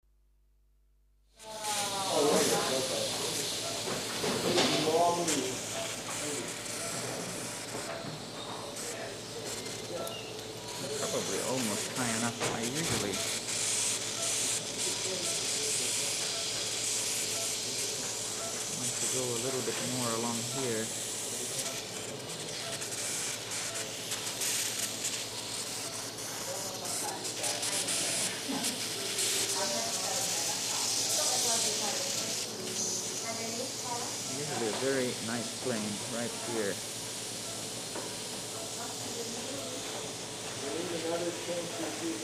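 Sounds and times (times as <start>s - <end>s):
industrial operating room ambience: 1.4s - 42.2s.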